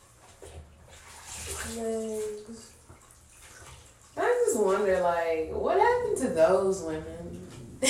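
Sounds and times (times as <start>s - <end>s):
water poured from a towel into a bathtub: 0.0s - 6.0s
speech: 1.7s - 2.7s, 4.6s - 7.8s.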